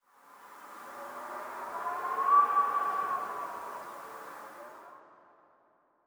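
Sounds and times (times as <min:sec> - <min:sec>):
howling wind: 0:00.5 - 0:04.9.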